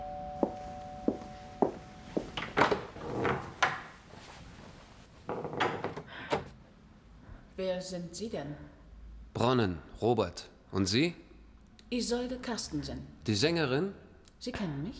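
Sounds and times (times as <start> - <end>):
door opening: 2.3 - 4.0, 5.3 - 6.6
speech: 7.6 - 8.7, 9.4 - 11.2, 11.9 - 14.9.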